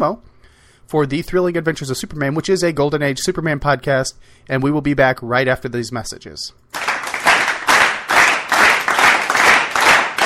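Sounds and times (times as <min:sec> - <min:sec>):
speech: 0:00.0 - 0:00.3, 0:00.9 - 0:06.7
live audience clapping and applauding loudly: 0:06.8 - 0:10.2.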